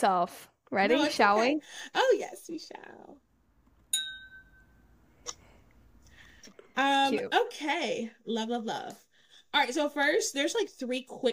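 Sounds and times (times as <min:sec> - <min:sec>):
speech: 0:00.0 - 0:03.3, 0:06.8 - 0:11.3
soft short glass tap: 0:03.9 - 0:04.6
two glasses clinking in a toast: 0:03.9 - 0:04.7.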